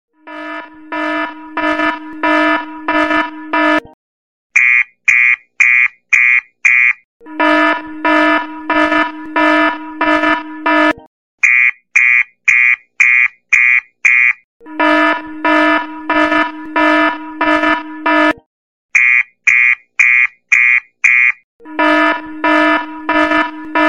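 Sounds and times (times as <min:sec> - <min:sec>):
Samsung alarm: 0:00.1 - 0:04.0, 0:04.6 - 0:23.8.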